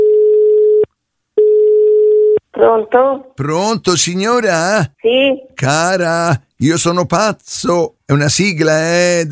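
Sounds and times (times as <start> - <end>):
telephone line tone as a call is placed: 0.0 - 2.4
speech: 2.6 - 9.2.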